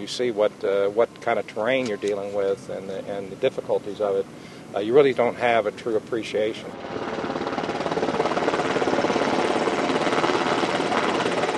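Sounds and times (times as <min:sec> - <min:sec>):
speech: 0:00.0 - 0:07.1
helicopter rotor thumping over mountains and desert near Arizona: 0:01.7 - 0:02.6, 0:05.9 - 0:11.5
loud dense helicopter engine roar: 0:06.6 - 0:11.5.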